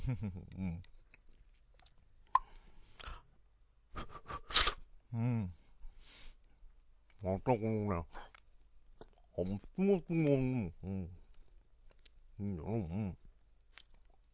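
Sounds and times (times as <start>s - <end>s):
speech: 0.1s - 1.0s, 5.1s - 5.6s, 7.2s - 8.3s, 9.4s - 11.2s, 12.4s - 13.2s
chewing and crunching as someone snacks on food: 0.8s - 2.3s, 11.2s - 12.4s, 13.2s - 14.3s.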